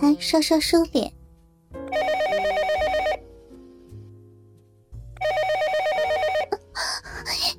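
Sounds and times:
speech: 0:00.0 - 0:01.2
desk telephone ringing with electronic trill: 0:01.9 - 0:03.3, 0:05.2 - 0:06.7.

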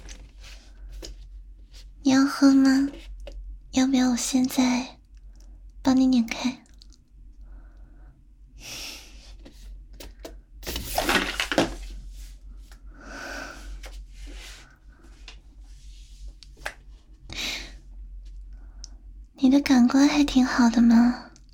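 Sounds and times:
speech: 0:02.0 - 0:03.1, 0:03.8 - 0:05.0, 0:05.9 - 0:06.6, 0:20.4 - 0:21.3
faint breathing: 0:07.4 - 0:09.4, 0:12.3 - 0:16.1, 0:17.3 - 0:17.9
plastic water bottle crinkly knocks and scrapes: 0:10.6 - 0:11.9.

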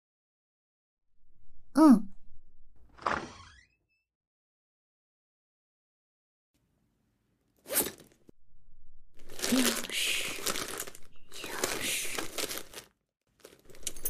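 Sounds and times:
person sighing: 0:01.8 - 0:02.1, 0:09.4 - 0:12.4
rustling and crinkling while rummaging through a teacher's briefcase: 0:09.2 - 0:14.0.

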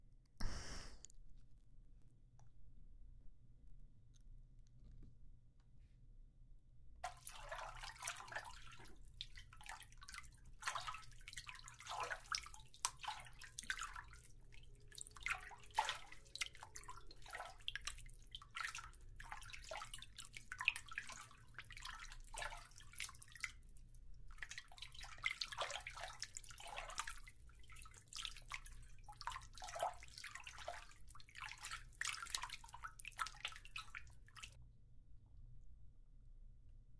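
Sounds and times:
bath water dripping and splashing: 0:07.0 - 0:34.6.

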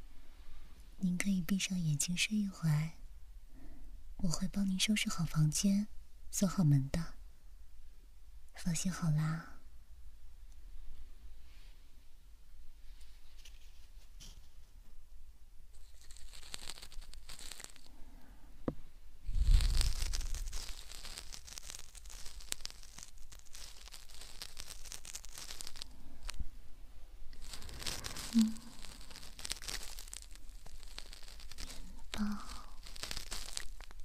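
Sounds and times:
speech: 0:01.0 - 0:03.0, 0:04.2 - 0:07.2, 0:08.6 - 0:09.5
gentle ASMR ear canal scraping: 0:19.3 - 0:26.4, 0:27.3 - 0:34.0.

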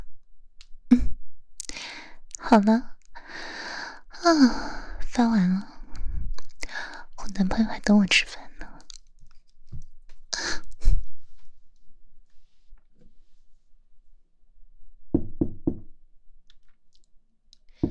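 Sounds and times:
speech: 0:02.5 - 0:02.9, 0:04.2 - 0:05.7, 0:07.4 - 0:08.4
knocking on a door: 0:15.1 - 0:15.9.

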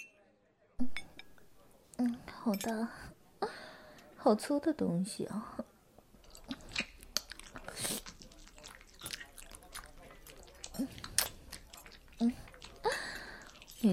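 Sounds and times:
speech: 0:02.0 - 0:03.1, 0:04.2 - 0:05.7
person biting and chewing a candied hawthorn skewer: 0:06.2 - 0:13.9.

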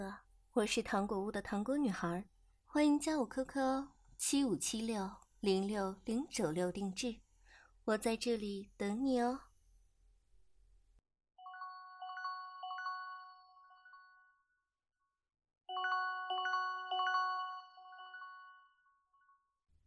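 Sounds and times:
speech: 0:00.0 - 0:07.2, 0:07.9 - 0:09.5
phone ringtone for an incoming call: 0:11.4 - 0:14.4, 0:15.7 - 0:19.1.

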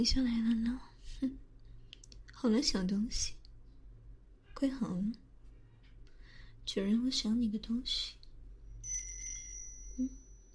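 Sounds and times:
speech: 0:00.0 - 0:01.4, 0:02.4 - 0:03.4, 0:04.6 - 0:05.2, 0:06.7 - 0:08.2, 0:10.0 - 0:10.2
small bell on a pink pet collar jingling: 0:08.8 - 0:10.5.

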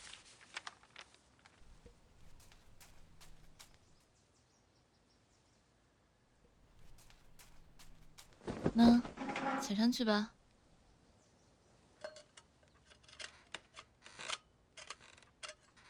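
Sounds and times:
soft footsteps: 0:01.6 - 0:04.0, 0:06.5 - 0:10.1
speech: 0:08.8 - 0:09.1, 0:09.7 - 0:10.4.

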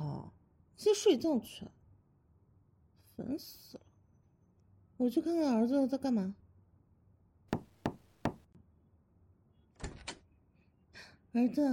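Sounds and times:
speech: 0:00.8 - 0:01.8, 0:03.2 - 0:03.9, 0:05.0 - 0:06.4, 0:11.4 - 0:11.7
sharp knocks on a bedroom door: 0:07.6 - 0:08.4.

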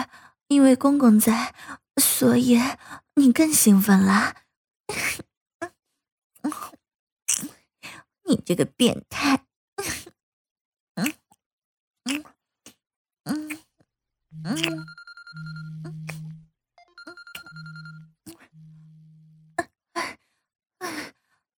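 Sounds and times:
speech: 0:00.5 - 0:05.0, 0:08.3 - 0:10.0, 0:14.4 - 0:16.1
phone with electronic ringtone ringing: 0:14.4 - 0:19.4.

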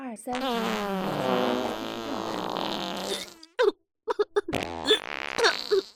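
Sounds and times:
long buzzy fart: 0:00.3 - 0:03.6, 0:04.5 - 0:05.9.

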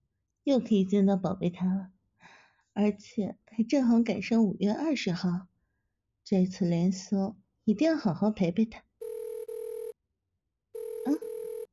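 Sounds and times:
speech: 0:00.4 - 0:01.9, 0:02.8 - 0:05.5, 0:06.3 - 0:08.9
phone ringing with an incoming call: 0:09.0 - 0:10.0, 0:10.8 - 0:11.7.

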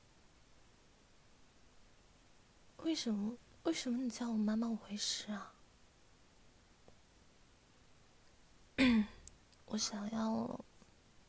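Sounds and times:
speech: 0:02.8 - 0:05.6, 0:09.7 - 0:10.7
short rough throaty cough: 0:08.8 - 0:09.2.

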